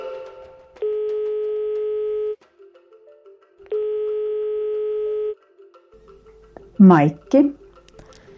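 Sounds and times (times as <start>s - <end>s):
telephone dialing tones: 0.8s - 2.4s, 3.7s - 5.4s
speech: 6.8s - 7.6s.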